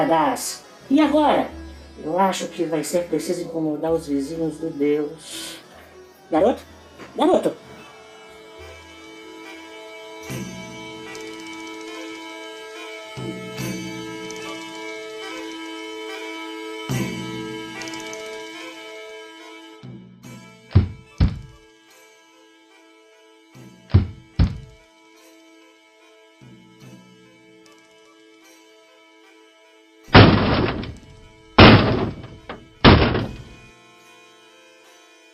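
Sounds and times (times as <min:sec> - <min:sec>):
speech: 0:00.0 - 0:05.6, 0:06.3 - 0:07.6
faint sustained musical drone: 0:00.0 - 0:35.3
knocking on a wooden door: 0:20.8 - 0:21.6, 0:23.9 - 0:24.8, 0:30.2 - 0:33.5.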